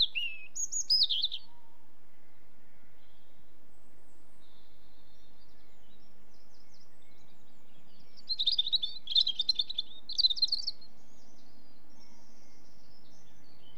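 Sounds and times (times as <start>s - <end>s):
European robin giving high thin warbled phrases: 0.0s - 1.5s, 8.2s - 10.9s
quiet low background noise: 0.0s - 13.7s.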